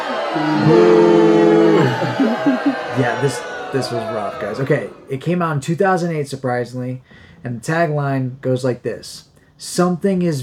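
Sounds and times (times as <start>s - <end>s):
laughter: 0.0s - 5.2s
speech: 0.4s - 0.8s, 2.9s - 10.4s
single voice letting out a long drawn-out boo: 0.4s - 3.4s.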